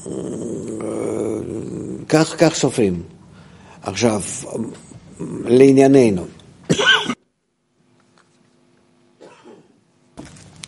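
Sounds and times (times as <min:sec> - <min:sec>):
speech: 0:02.1 - 0:03.2, 0:03.8 - 0:06.8
harsh cough: 0:06.7 - 0:07.3, 0:09.2 - 0:09.8
throat clearing: 0:06.7 - 0:07.3, 0:09.2 - 0:09.8.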